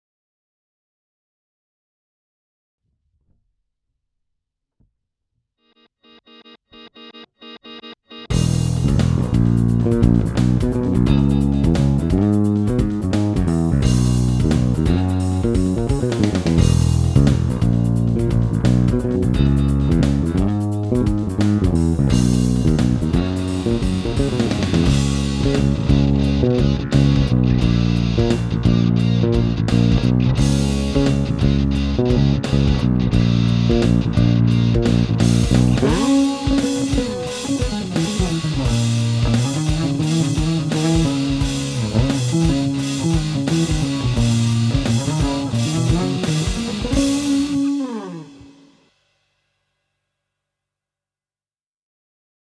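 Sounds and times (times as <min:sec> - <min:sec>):
guitar groove and solo in E Lydian: 0:06.8 - 0:48.7.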